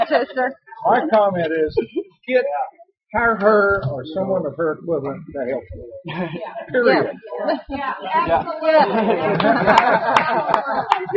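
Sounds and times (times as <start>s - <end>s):
crowd murmuring and chattering: 0.0s - 11.1s
speech: 0.1s - 11.1s
laughter: 6.1s - 11.1s
scattered claps: 9.3s - 11.1s.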